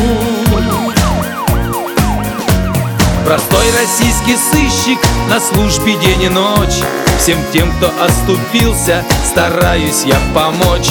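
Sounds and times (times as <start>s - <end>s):
pounding rhythmic beat with sharp hits: 0.0s - 10.8s
police car siren wailing: 0.3s - 7.3s
speech: 3.3s - 10.8s.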